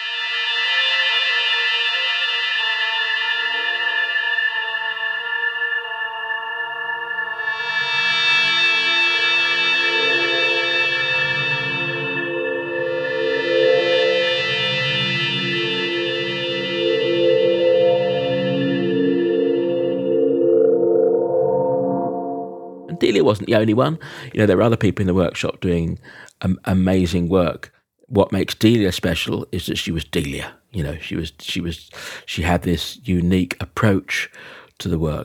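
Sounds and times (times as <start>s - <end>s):
bright swelling sweeps: 0.0s - 23.8s
layered droning electronic tones overdubbed on tape with delay and spring reverb: 0.0s - 24.0s
speech: 23.2s - 35.2s.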